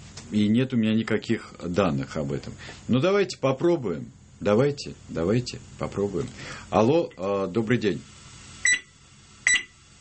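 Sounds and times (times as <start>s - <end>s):
speech: 0.3s - 8.1s
short electronic beeps: 8.6s - 8.9s, 9.5s - 9.8s.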